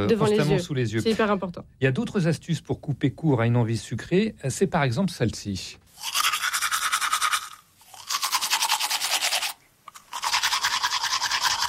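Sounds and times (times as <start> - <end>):
speech: 0.0 - 6.2
vigorous tooth brushing with a toothbrush and minty toothpaste: 6.0 - 11.6.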